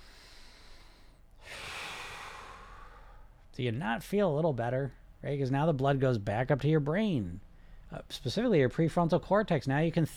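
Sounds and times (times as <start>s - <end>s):
deep breath: 0.0s - 3.4s
speech: 3.6s - 10.1s.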